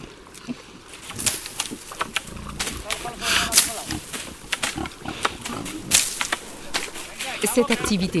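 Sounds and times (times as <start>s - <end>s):
rustling and crunching of pigs rooting through the ground for acorns: 0.8s - 8.1s
Iberian pigs grunting and snuffling while foraging acorns: 0.9s - 8.1s
speech: 7.6s - 8.1s.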